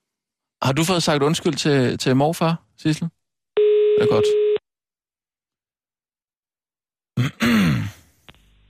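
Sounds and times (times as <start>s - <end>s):
speech: 0.7s - 3.2s, 4.0s - 4.4s, 7.2s - 7.9s
short steady telephone ringing tone: 3.6s - 4.6s
loud sigh or grunt: 7.2s - 8.1s.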